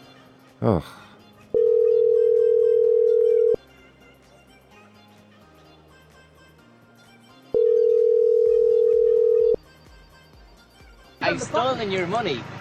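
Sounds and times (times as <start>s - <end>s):
quiet music: 0.0s - 12.5s
speech: 0.6s - 1.7s, 11.4s - 12.5s
telephone ringback tone on a call: 1.6s - 3.6s, 7.6s - 9.6s.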